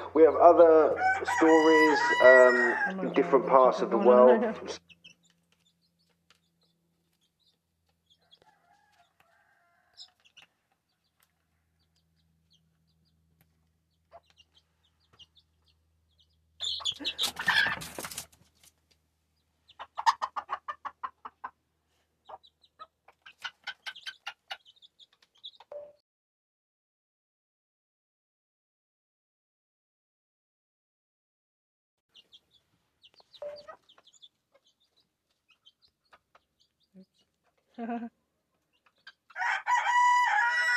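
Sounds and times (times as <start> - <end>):
agitated hen clucking while scaring a cat away: 0.0 - 18.2, 19.4 - 25.7, 32.2 - 39.6
chicks peeping: 0.0 - 18.7, 19.4 - 21.6, 22.2 - 25.7, 32.1 - 40.7
speech: 0.2 - 4.8.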